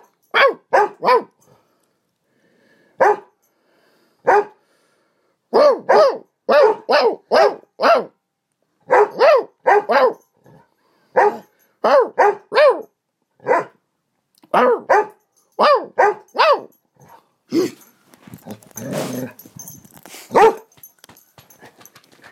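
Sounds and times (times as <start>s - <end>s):
female dog barking at a person: 0.0s - 1.4s, 3.0s - 3.4s, 4.2s - 4.6s, 5.5s - 8.2s, 8.8s - 10.3s, 11.1s - 13.8s, 14.5s - 16.8s, 20.3s - 20.7s.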